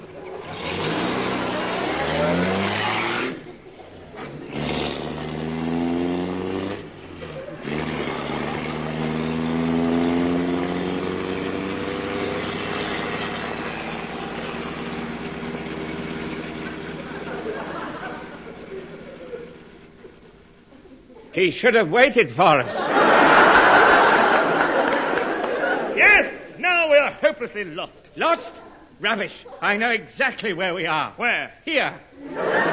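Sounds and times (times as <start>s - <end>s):
car engine revving and driving off: 0.0s - 20.1s
laughter: 7.2s - 8.8s, 16.8s - 21.3s, 22.5s - 26.5s, 32.2s - 32.7s
speech: 21.4s - 23.0s, 27.4s - 32.4s.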